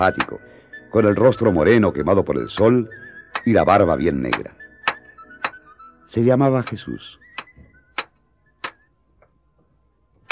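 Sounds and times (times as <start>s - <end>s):
hammer striking metal horseshoes during horseshoe making: 0.0s - 0.5s, 3.3s - 3.6s, 4.3s - 5.7s, 7.4s - 8.9s
speech: 0.0s - 4.6s, 6.1s - 7.2s.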